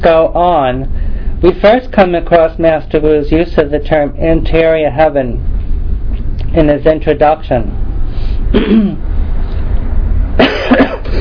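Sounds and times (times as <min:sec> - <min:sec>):
speech: 0:00.0 - 0:05.5, 0:06.5 - 0:09.1
low rumble: 0:00.0 - 0:11.1
person coughing: 0:08.5 - 0:09.0, 0:10.4 - 0:11.1.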